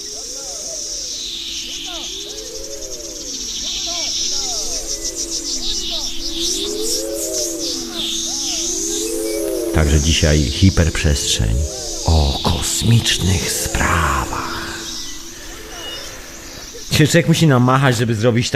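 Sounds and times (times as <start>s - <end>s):
steady electronic drone: 1.0s - 17.0s
shimmering high warbles: 1.2s - 17.0s
wavering looping synthetic sci-fi tones sweeping up and down: 3.2s - 16.9s
speech: 9.9s - 12.2s, 12.8s - 14.3s, 17.0s - 18.5s.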